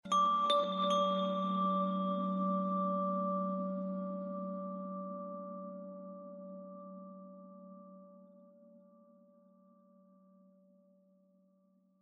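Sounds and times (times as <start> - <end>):
ambient chimes: 0.1 - 4.6.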